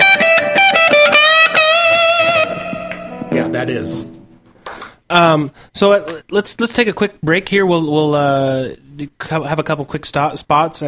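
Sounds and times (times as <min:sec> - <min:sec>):
loud electric guitar played through a reverb pedal: 0:00.0 - 0:04.4
speech: 0:05.1 - 0:10.8.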